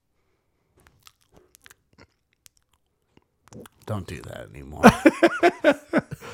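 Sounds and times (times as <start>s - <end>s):
wet chewing with the mouth open: 0.7s - 4.2s
speech: 3.6s - 6.3s
laughter: 4.8s - 6.3s.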